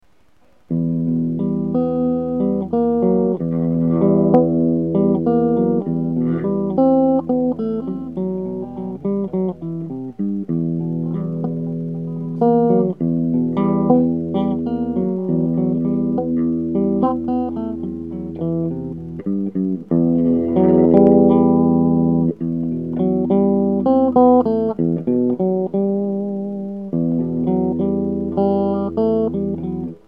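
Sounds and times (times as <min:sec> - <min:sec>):
guitar riff: 0:00.2 - 0:30.0.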